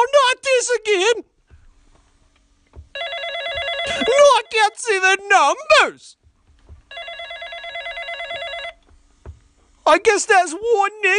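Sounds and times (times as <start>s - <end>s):
speech: 0.6s - 1.3s, 3.9s - 6.2s, 9.9s - 11.1s
soft knocks: 2.7s - 3.9s, 6.2s - 7.0s, 8.8s - 9.6s
telephone bell ringing: 3.0s - 4.2s, 6.9s - 8.8s.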